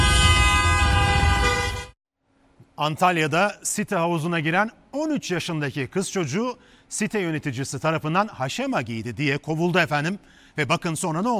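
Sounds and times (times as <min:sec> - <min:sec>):
car horn blaring in stopped traffic: 0:00.0 - 0:02.0
speech: 0:02.8 - 0:11.3.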